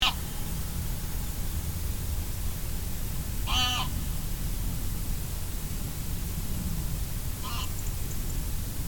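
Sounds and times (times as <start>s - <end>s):
constant low rumbling noise: 0.0s - 8.8s
goose giving nasal harmonic honks: 3.4s - 4.0s, 7.4s - 7.8s.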